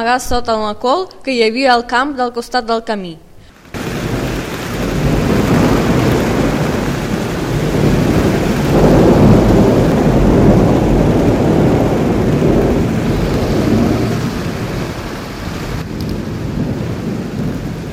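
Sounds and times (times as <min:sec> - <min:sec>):
speech: 0:00.0 - 0:03.2
thunder rumbling: 0:03.4 - 0:17.9
heavy rain: 0:03.5 - 0:17.9.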